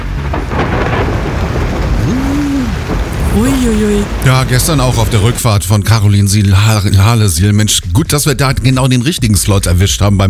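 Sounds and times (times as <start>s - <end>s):
heavy rain hissing in a thunderstorm: 0.0s - 7.8s
deep thunder rumbling: 0.0s - 7.9s
brief rising-and-falling tone: 1.9s - 3.4s
speech: 3.4s - 10.2s.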